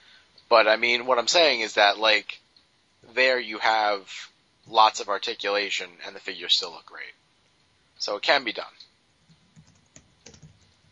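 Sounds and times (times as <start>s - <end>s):
speech: 0.5s - 2.4s, 3.0s - 7.2s, 8.0s - 8.9s
typing on a computer keyboard: 9.2s - 10.8s.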